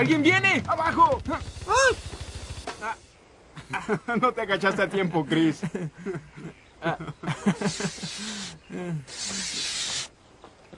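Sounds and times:
speech: 0.0s - 2.0s, 3.7s - 9.7s
owl hissing: 1.4s - 3.2s, 7.5s - 10.2s
laughter: 3.6s - 9.1s.

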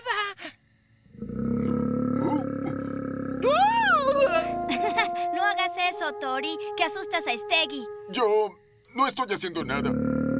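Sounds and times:
voice imitating the roar of a very large fearsome monster: 1.2s - 5.2s
speech: 5.9s - 10.1s.

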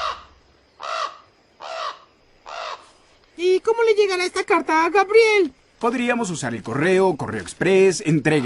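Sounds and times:
crow cawing harshly: 0.0s - 2.9s
speech: 3.6s - 8.4s.

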